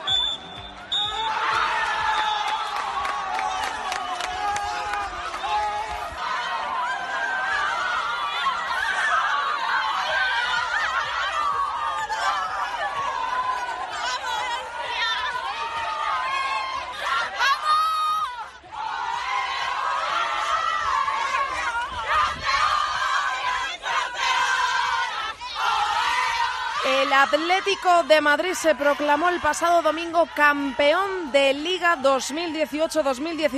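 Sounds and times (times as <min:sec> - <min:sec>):
short high final whistle ending a women's football match at Zubieta: 0:00.0 - 0:01.4
large football crowd cheering: 0:00.0 - 0:33.5
speech: 0:27.2 - 0:33.5.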